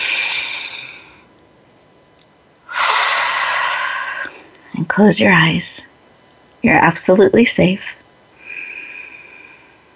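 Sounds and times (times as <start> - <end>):
long breathy inhale during a guided relaxation: 0.0 - 1.3, 2.6 - 4.6, 8.4 - 9.9
loud steady exhale: 0.0 - 1.3, 2.6 - 4.6, 8.4 - 9.9
speech: 4.8 - 5.9, 6.6 - 8.0.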